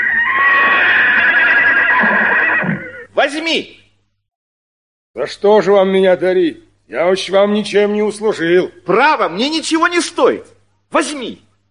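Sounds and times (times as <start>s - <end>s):
horse whinnying in a long sustained neigh: 0.0s - 3.2s
speech: 3.2s - 3.8s, 5.2s - 11.5s.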